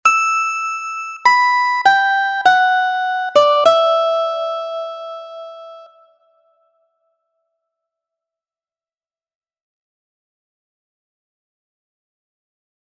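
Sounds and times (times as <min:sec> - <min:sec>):
harmonica prelude: 0:00.1 - 0:06.1.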